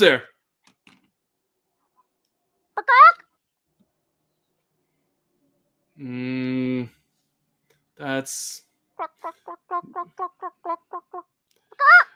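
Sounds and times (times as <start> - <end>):
speech: 0.0 - 0.3, 2.8 - 3.1, 6.0 - 7.0, 8.0 - 12.1
voice imitating chicken squawks and clucks: 2.8 - 3.3, 9.0 - 12.1.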